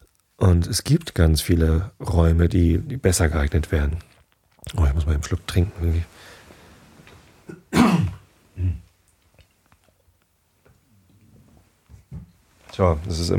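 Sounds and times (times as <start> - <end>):
speech: 0.4 - 6.3, 12.8 - 13.3
soft rustling: 3.3 - 7.5, 8.2 - 13.3
person coughing close to the mic: 7.4 - 8.8
person clearing throat close to the mic: 7.4 - 8.9.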